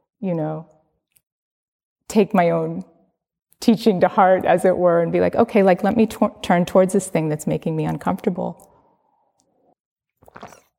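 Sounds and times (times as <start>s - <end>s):
speech: 0.2s - 0.8s, 2.1s - 2.9s, 3.6s - 8.7s
sip and swallow of water: 10.2s - 10.7s.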